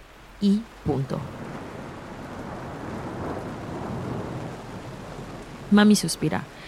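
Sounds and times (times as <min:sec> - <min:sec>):
heavy rain: 0:00.0 - 0:06.6
speech: 0:00.4 - 0:01.4, 0:05.7 - 0:06.6
thunder rumbling: 0:00.8 - 0:06.6.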